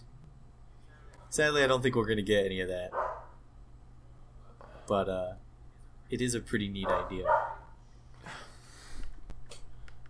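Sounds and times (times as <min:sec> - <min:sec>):
speech: 0:01.3 - 0:03.0, 0:04.9 - 0:05.4, 0:06.1 - 0:07.4
pet dog barking faintly: 0:02.9 - 0:03.4, 0:06.8 - 0:07.8.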